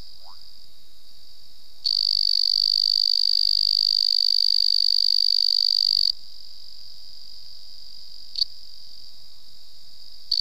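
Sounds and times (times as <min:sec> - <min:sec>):
Weidholz's banana frog Afrixalus weidholzi buzzing trill call: 0:01.8 - 0:06.1.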